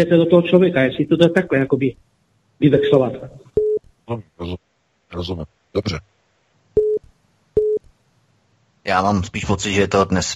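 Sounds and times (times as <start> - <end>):
speech: 0.0 - 3.4, 4.1 - 6.1, 8.8 - 10.3
electronic telephone beeps on a phone line: 3.6 - 3.8, 6.8 - 7.0, 7.6 - 7.8.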